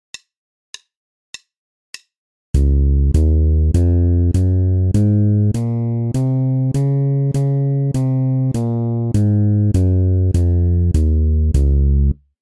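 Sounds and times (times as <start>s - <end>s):
bass playing a D flat major scale exercise: 2.6s - 12.2s.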